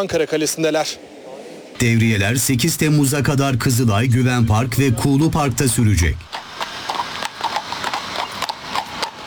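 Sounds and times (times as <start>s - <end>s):
speech: 0.0s - 1.2s, 1.8s - 6.4s
mounted police horses' hooves clip-clopping on patrol: 6.2s - 9.2s.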